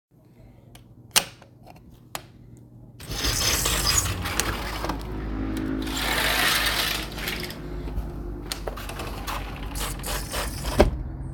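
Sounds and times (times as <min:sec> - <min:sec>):
door opening to outside: 0:03.0 - 0:11.1.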